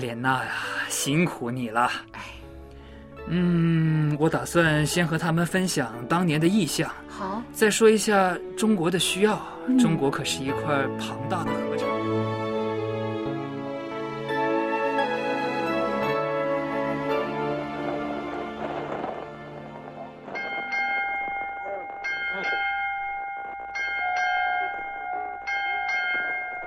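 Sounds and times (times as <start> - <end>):
speech: 0.0 - 2.3, 3.3 - 11.9
sustained music: 0.0 - 22.2
bell chimes: 20.3 - 26.6.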